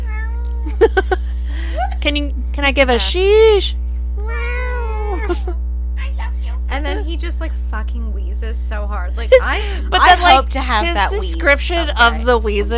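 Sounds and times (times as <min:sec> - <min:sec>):
cat meowing high-pitched: 0:00.0 - 0:00.8, 0:04.2 - 0:05.4
low steady hum: 0:00.0 - 0:12.7
laughter: 0:00.7 - 0:02.0, 0:05.0 - 0:05.6
speech: 0:02.0 - 0:03.8, 0:05.3 - 0:05.6, 0:06.7 - 0:12.7.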